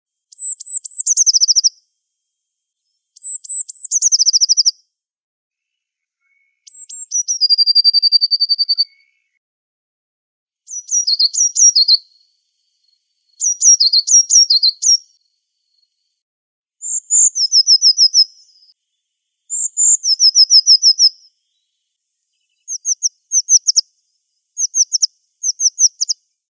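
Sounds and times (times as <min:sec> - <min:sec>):
blue tit singing five song types: 0:00.3 - 0:01.8, 0:02.8 - 0:04.8, 0:06.2 - 0:09.1, 0:10.7 - 0:16.0, 0:16.8 - 0:26.3.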